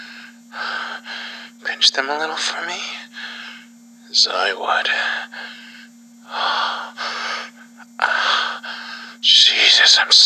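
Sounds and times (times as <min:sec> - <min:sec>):
heavy breathy panting and gasping: 0:00.0 - 0:01.6, 0:05.3 - 0:09.2
low steady hum: 0:00.0 - 0:10.2
speech: 0:01.8 - 0:03.2, 0:04.1 - 0:05.6, 0:09.2 - 0:10.2.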